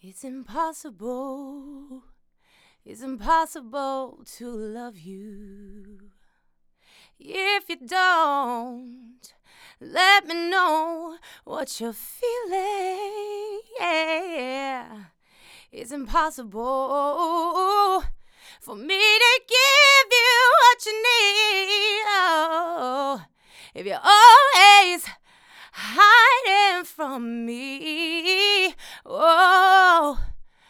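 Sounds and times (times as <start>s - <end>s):
vocals recorded on a U67 microphone: 0.0s - 30.6s.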